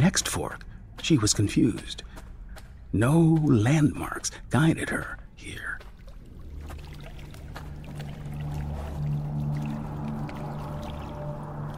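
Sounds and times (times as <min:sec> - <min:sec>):
speech: 0:00.0 - 0:02.2, 0:02.9 - 0:05.8
flood water sloshing and churning in a corridor: 0:01.0 - 0:11.7
low droning hum: 0:05.2 - 0:11.7.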